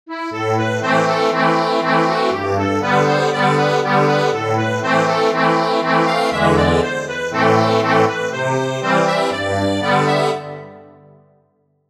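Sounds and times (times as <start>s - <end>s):
accordion playing a Scotch reel: 0.1s - 11.1s.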